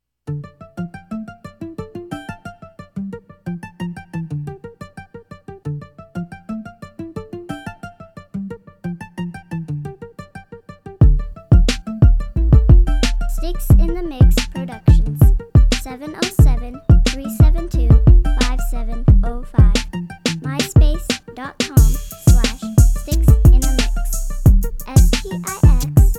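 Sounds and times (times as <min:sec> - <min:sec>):
mute crunk beat: 0:11.0 - 0:26.1.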